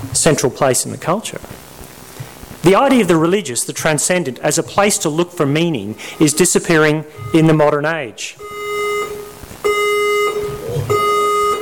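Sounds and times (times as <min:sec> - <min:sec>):
speech: 0:00.0 - 0:01.8, 0:02.6 - 0:08.6
fire alarm blaring a harsh buzzing electronic tone: 0:04.8 - 0:11.6.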